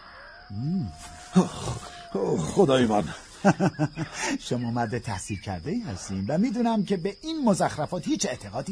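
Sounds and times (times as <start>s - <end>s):
eerie howl of a large beast: 0.0s - 3.0s
speech: 0.5s - 8.7s
laughter: 3.3s - 4.6s.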